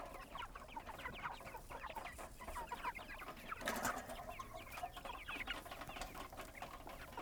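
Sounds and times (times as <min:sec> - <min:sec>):
chickens clucking and cackling at a goat farm: 0:00.0 - 0:07.1.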